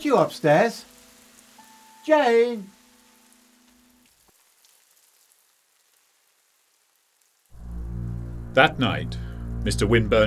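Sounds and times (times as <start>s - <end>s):
speech: 0.0s - 0.9s, 2.0s - 2.8s, 8.5s - 10.2s
rain falling on a surface: 0.0s - 8.0s.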